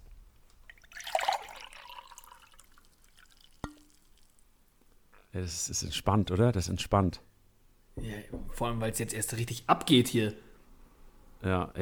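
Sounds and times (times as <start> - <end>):
faint water drips: 0.4 - 5.3
water poured into a drinking glass: 0.7 - 4.4
speech: 5.3 - 7.3, 8.0 - 10.5, 11.4 - 11.7.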